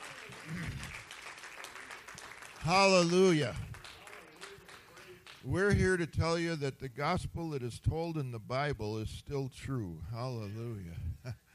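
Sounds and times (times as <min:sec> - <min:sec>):
church congregation clapping hands in praise: 0:00.0 - 0:05.8
speech: 0:02.6 - 0:03.7, 0:05.4 - 0:11.4.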